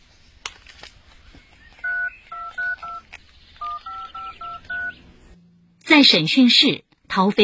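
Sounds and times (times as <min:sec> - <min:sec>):
phone keypad dual-tone beeps as a number is dialed: 0:01.8 - 0:03.0, 0:03.6 - 0:05.0
speech: 0:05.9 - 0:07.4.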